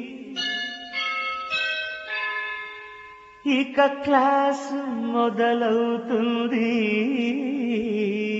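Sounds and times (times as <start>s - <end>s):
school bell ringing: 0.3s - 3.8s
speech: 3.6s - 8.2s.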